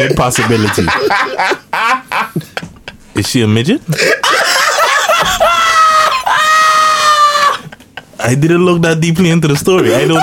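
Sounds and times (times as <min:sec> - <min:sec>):
laughter: 0:00.0 - 0:03.0, 0:03.9 - 0:08.2, 0:09.8 - 0:10.2
speech: 0:00.0 - 0:04.4, 0:08.2 - 0:10.2
person screaming into a microphone: 0:05.3 - 0:07.6, 0:09.9 - 0:10.2.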